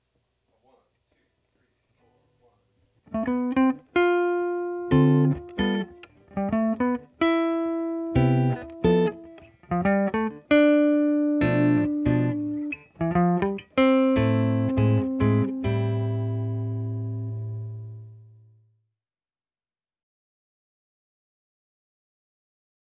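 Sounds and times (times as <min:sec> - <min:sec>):
jazz music: 0:03.1 - 0:18.2.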